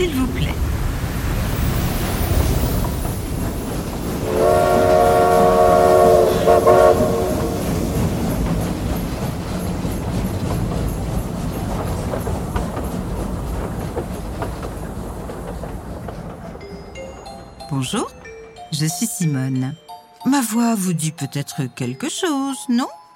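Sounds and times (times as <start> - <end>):
train rumbling while arriving at station: 0.0 - 19.7
train horn blaring: 4.2 - 8.0
speech: 18.7 - 23.0.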